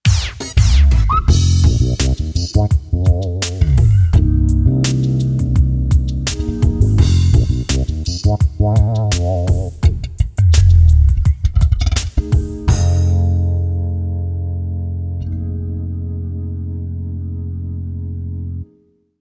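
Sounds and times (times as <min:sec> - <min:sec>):
Roland XP-80 drums: 0:00.0 - 0:13.5
Roland XP-80 bass: 0:00.6 - 0:18.8.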